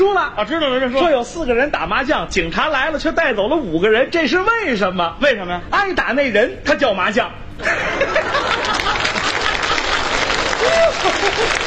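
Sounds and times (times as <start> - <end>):
speech: 0.3 - 8.7, 11.0 - 11.6
audience chuckling at a comedy show: 7.6 - 11.6
audience applause at a comedy show: 8.3 - 11.6.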